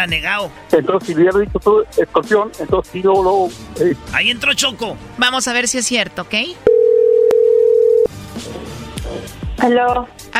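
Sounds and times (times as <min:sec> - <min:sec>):
speech: 0:00.0 - 0:06.8, 0:09.6 - 0:10.3
telephone tone after a dropped call: 0:06.7 - 0:08.1.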